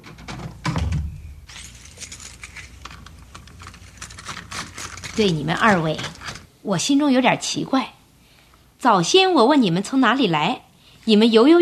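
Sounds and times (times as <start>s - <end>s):
door thunking open: 0.0s - 1.6s
door lock clicking and rattling while being unlocked: 0.0s - 6.5s
speech: 5.2s - 8.0s, 8.8s - 11.5s.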